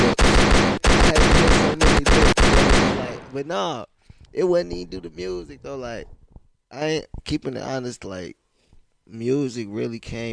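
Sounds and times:
dense bursts of loud gunfire: 0.0 - 3.3
speech: 3.4 - 8.4, 9.1 - 10.3.

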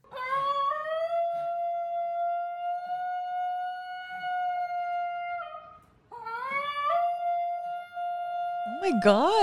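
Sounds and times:
Basenji dog yodeling howl: 0.1 - 8.9
speech: 8.8 - 9.4.

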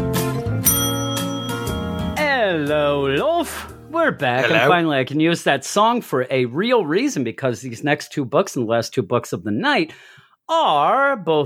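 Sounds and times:
bicycle bell ringing: 0.6 - 2.2
speech: 2.7 - 11.4.

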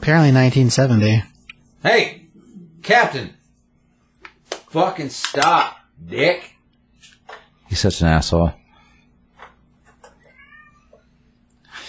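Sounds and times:
speech: 0.0 - 2.2, 2.8 - 3.4, 4.7 - 6.5, 7.7 - 8.6
low steady hum: 0.0 - 11.8
cat meowing while walking away: 10.2 - 11.0.

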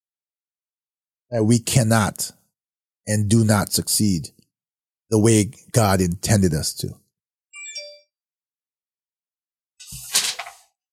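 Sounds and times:
speech: 1.3 - 2.4, 3.1 - 4.4, 5.1 - 7.0
electronic phone chime alert: 7.6 - 8.2.

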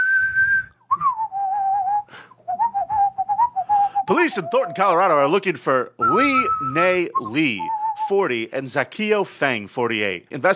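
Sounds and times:
person whistling a tune: 0.0 - 5.1, 6.0 - 8.2
speech: 4.1 - 10.5.

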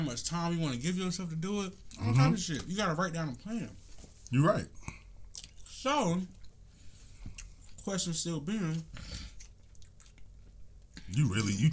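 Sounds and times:
speech: 0.0 - 5.0, 5.8 - 6.4, 7.9 - 9.2, 11.1 - 11.7
chewing food with wet squishy mouth sounds: 4.2 - 7.9, 8.7 - 11.7.

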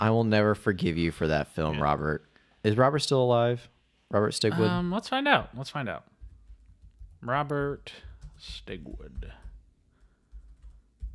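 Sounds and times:
speech: 0.0 - 6.1, 7.2 - 9.4
typing on a computer keyboard: 6.2 - 7.3, 8.0 - 11.1.

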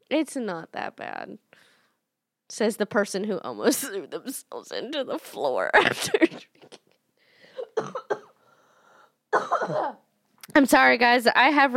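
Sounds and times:
speech: 0.1 - 1.7, 2.5 - 6.8, 9.4 - 11.7
person coughing: 7.5 - 8.4, 9.3 - 10.0.

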